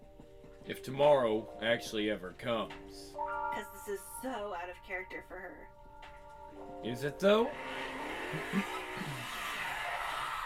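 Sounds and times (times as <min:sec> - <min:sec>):
speech: 0:00.7 - 0:05.8, 0:06.5 - 0:09.1
car tires squealing while skidding out of control: 0:07.5 - 0:10.4.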